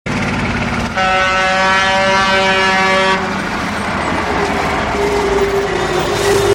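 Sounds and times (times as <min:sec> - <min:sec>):
heavy traffic: 0:00.0 - 0:06.5
car horns honking in heavy traffic: 0:00.9 - 0:03.5.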